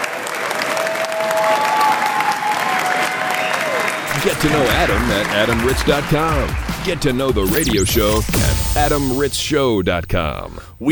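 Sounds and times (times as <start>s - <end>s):
audience applauding: 0.0s - 7.0s
whistle or cheer from the crowd: 0.7s - 4.4s
speech: 4.2s - 10.8s.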